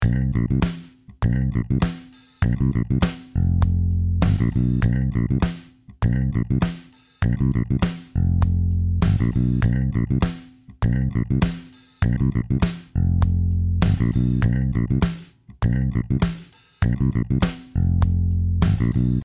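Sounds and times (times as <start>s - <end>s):
funk music played on Trilian: 0.0s - 19.2s.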